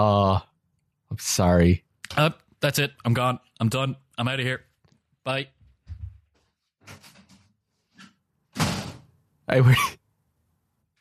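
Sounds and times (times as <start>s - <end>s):
speech: 1.1s - 5.6s, 9.5s - 10.0s
door slamming shut: 8.5s - 9.1s.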